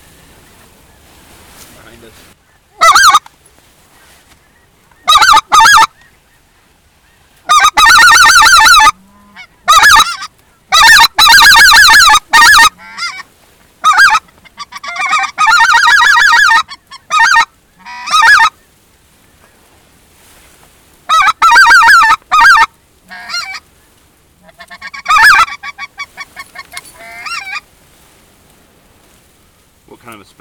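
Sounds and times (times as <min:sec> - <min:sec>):
acrylic duck call blown in raspy quacks: 0:02.7 - 0:03.3, 0:05.0 - 0:06.0, 0:07.4 - 0:18.6, 0:21.1 - 0:23.6, 0:24.4 - 0:27.6.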